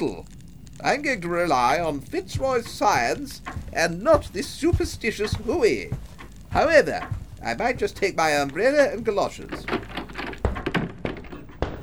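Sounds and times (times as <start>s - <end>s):
speech: 0.0s - 9.8s
dull knocks on a wooden door: 3.4s - 7.4s, 9.7s - 11.8s.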